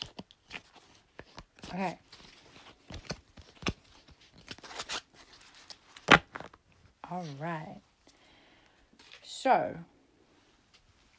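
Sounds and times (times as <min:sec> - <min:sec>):
deck of playing cards shuffling: 0:00.0 - 0:06.6
speech: 0:01.7 - 0:02.0, 0:07.1 - 0:07.9, 0:09.4 - 0:09.9.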